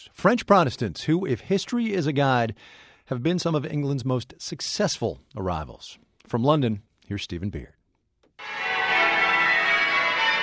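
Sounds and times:
speech: 0.0 - 7.8
church bells of Christchurch, Spitalfields in East London pealing: 8.4 - 10.4.

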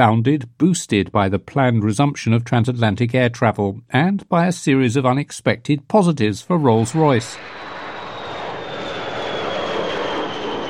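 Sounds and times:
speech: 0.0 - 7.7
American B-52 bomber engines roaring on takeoff from a British airfield: 6.5 - 10.6.

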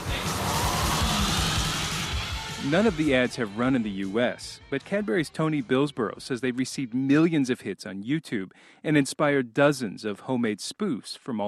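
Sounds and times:
airport service truck engines roaring in a drag race: 0.0 - 3.3
speech: 2.6 - 11.4.

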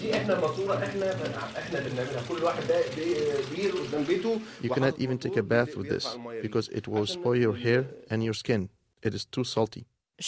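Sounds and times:
water running from a kitchen tap: 0.0 - 5.2
speech: 0.2 - 10.2.

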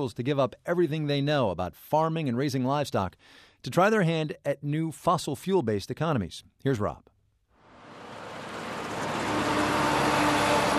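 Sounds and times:
speech: 0.0 - 7.1
heavy coal truck engine roar: 7.6 - 10.7
rumbling road noise: 7.6 - 10.7.

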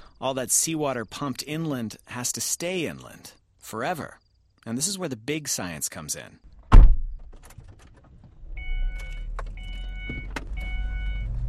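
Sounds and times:
speech: 0.2 - 6.5
sharp clicks and knocks: 6.6 - 10.6
car power windows whining on a moving car in the desert: 8.3 - 11.4.

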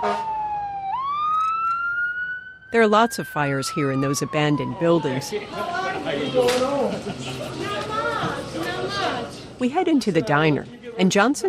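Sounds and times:
fire engine siren wailing: 0.0 - 6.8
speech: 2.7 - 11.4
laughter: 5.5 - 9.4.

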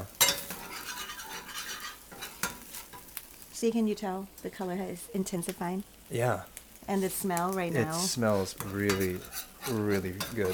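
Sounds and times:
stirring curry paste and coconut milk in a pan: 0.0 - 3.6, 5.4 - 10.5
speech: 3.6 - 10.5.

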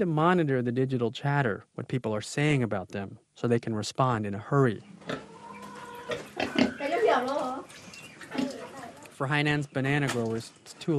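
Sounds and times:
speech: 0.0 - 5.3, 6.1 - 8.4, 9.2 - 10.9
pigs grunting and oinking: 4.8 - 6.8
overlapping pig snorts and squealing oinks: 4.8 - 9.2.

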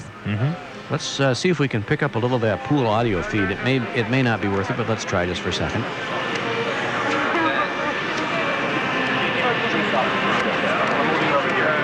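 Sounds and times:
crowd chatter: 0.0 - 11.8
speech: 0.2 - 6.2
jet aircraft engines roaring: 2.7 - 11.8
band playing: 3.0 - 4.6.

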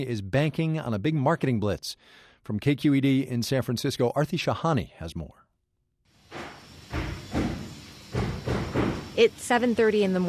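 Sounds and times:
speech: 0.0 - 5.4, 9.2 - 10.2
steady hum: 6.2 - 10.2
construction crew banging on walls at a clinic in West Berkeley California: 6.3 - 9.1.

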